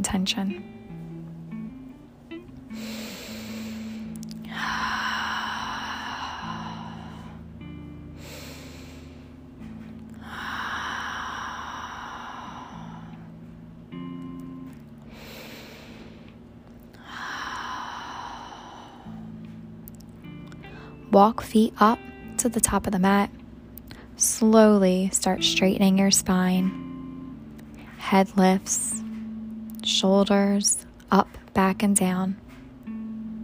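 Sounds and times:
speech: 0.0s - 0.8s, 21.2s - 23.4s, 24.2s - 26.8s, 28.0s - 29.0s, 29.9s - 32.4s
soft steady music: 0.0s - 33.4s
slow deep breaths during a gentle yoga class: 2.7s - 13.6s, 15.0s - 19.7s.

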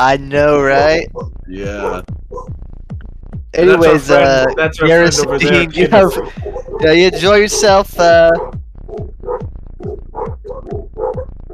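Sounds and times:
speech: 0.0s - 2.6s, 3.6s - 9.1s
laughter: 1.5s - 2.0s, 3.6s - 8.3s
dog barking: 5.9s - 7.2s, 8.3s - 11.5s.

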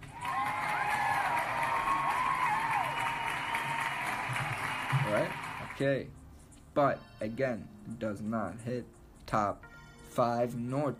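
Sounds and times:
cheering: 0.0s - 5.8s
crowd applauding: 0.0s - 5.8s
speech: 5.2s - 6.2s, 6.8s - 10.9s.

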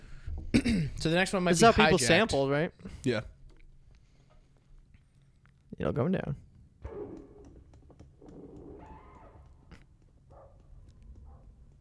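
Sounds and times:
speech: 1.0s - 3.3s, 5.8s - 6.4s
dogs barking and yelping: 8.3s - 11.7s.

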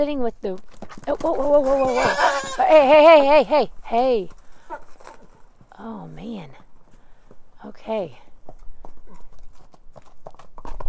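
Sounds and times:
speech: 0.0s - 4.4s, 5.8s - 6.6s, 7.6s - 8.2s
Mustang horse hooves clip-clopping while being led to a paddock: 0.0s - 10.8s.

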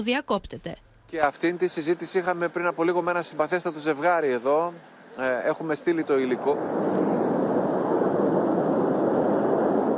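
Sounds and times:
speech: 0.0s - 7.1s
missile flying overhead: 6.0s - 9.9s.

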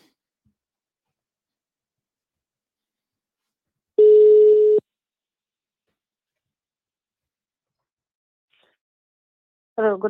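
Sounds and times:
outgoing phone call dialing tone: 4.0s - 4.8s
speech: 9.8s - 10.0s.

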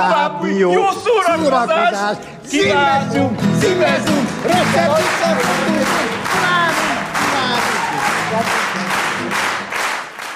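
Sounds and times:
speech: 0.0s - 6.5s
crowd applauding with dense continuous clapping: 3.6s - 10.3s
faint voices and cheers: 4.2s - 9.3s.

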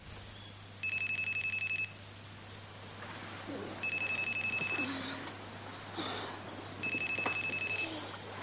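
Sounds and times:
faint room noise: 0.0s - 8.4s
low constant hum: 0.0s - 8.4s
telephone ringing: 0.8s - 2.0s, 3.8s - 5.3s, 6.8s - 8.2s.

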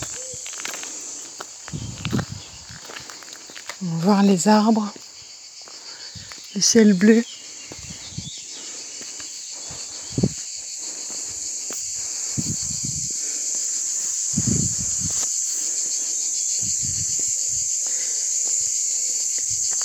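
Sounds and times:
cicadas chirping: 0.0s - 19.8s
low thumps and rustles: 1.7s - 3.1s, 10.1s - 10.4s, 14.4s - 15.2s
speech: 3.8s - 5.0s, 6.6s - 7.4s.

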